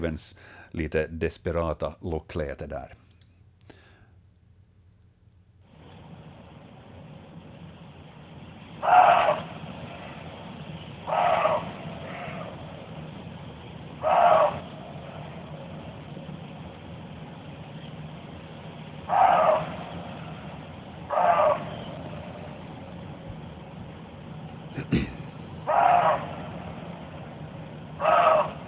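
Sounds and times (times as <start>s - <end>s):
speech: 0.0s - 3.0s
steady outdoor hiss: 0.0s - 28.6s
roe deer barking: 8.8s - 9.6s, 11.0s - 12.6s, 14.0s - 15.3s, 19.1s - 19.8s, 21.1s - 22.8s, 24.8s - 26.6s, 28.0s - 28.6s.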